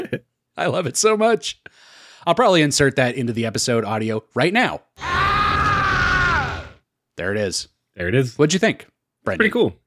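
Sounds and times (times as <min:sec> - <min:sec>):
speech: 0:00.0 - 0:05.1, 0:07.2 - 0:09.8
cartoonish villain yell: 0:05.0 - 0:06.8.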